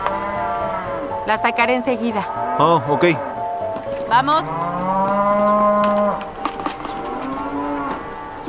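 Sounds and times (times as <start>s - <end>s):
beef cattle on a family ranch mooing: 0.0s - 8.4s
faint outdoor farm noise: 0.0s - 8.4s
speech: 1.3s - 3.3s, 4.1s - 4.8s.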